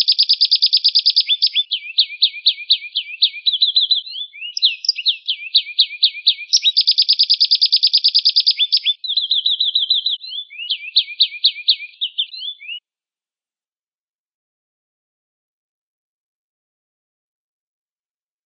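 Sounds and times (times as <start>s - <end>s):
Atlantic canary family singing with chirped phrases and rattling trills: 0.0s - 12.8s.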